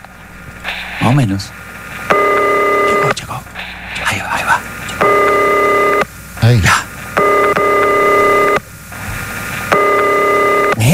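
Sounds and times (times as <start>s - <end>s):
speech: 1.0s - 1.7s, 6.5s - 6.8s
ringback tone of an unanswered telephone call in a phone-in prize call: 2.1s - 3.1s, 5.0s - 6.0s, 7.2s - 8.6s, 9.8s - 10.8s.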